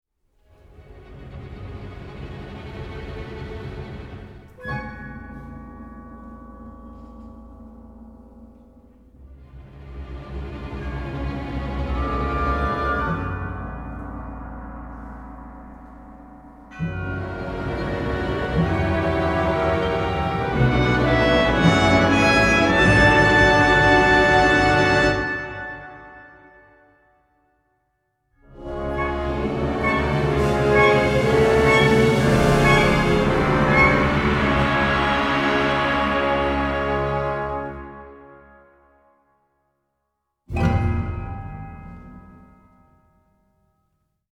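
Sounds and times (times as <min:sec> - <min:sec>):
tremolo suspense music: 0:00.6 - 0:25.2, 0:28.4 - 0:37.4.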